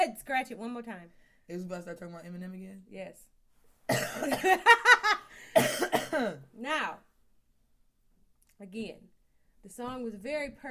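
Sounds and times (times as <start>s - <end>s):
speech: 0.0s - 7.1s, 8.6s - 10.7s
person coughing: 3.9s - 4.6s, 5.5s - 6.5s.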